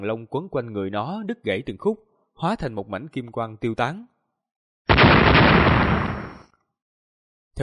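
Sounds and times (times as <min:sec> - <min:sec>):
speech: 0:00.0 - 0:04.1
explosion of seven glowing golden orbs: 0:04.9 - 0:06.5.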